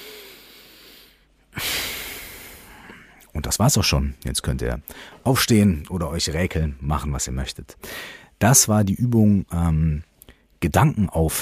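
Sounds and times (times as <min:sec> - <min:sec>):
loud breathy exhale in a Tibetan Kum Nye yoga relaxation exercise: 0:00.0 - 0:02.8
person inhaling in a Tibetan Kum Nye yoga relaxation exercise: 0:00.0 - 0:03.2, 0:04.9 - 0:05.2, 0:07.8 - 0:08.4
speech: 0:03.4 - 0:11.3.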